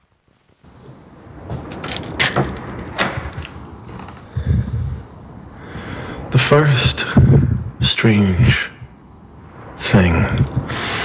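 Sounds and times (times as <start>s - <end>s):
old trees creaking and groaning: 0.0s - 11.0s
steady outdoor hush: 0.0s - 11.0s
speech: 6.5s - 7.4s, 8.0s - 8.7s.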